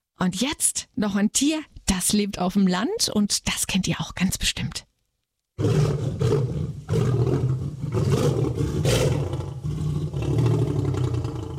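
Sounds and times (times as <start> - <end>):
speech: 0.2 - 4.9, 5.6 - 7.1
lion roaring: 5.6 - 11.5.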